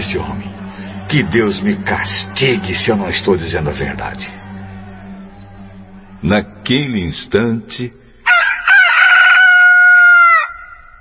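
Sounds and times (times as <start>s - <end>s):
speech: 0.1s - 4.4s, 6.2s - 8.0s
rooster crowing: 8.2s - 11.0s.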